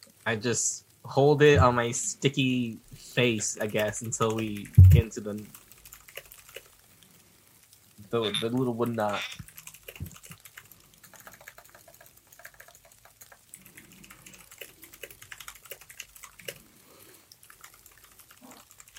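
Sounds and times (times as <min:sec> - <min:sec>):
speech: 0:00.2 - 0:05.6, 0:08.1 - 0:10.1
rapid typing on a computer keyboard: 0:03.6 - 0:06.8, 0:08.8 - 0:16.7, 0:17.3 - 0:18.9.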